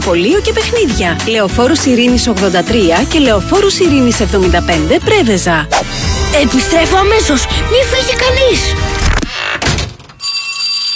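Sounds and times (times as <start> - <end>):
speech: 0.1 - 9.1
school bell ringing for the first day of the school year: 10.2 - 10.9.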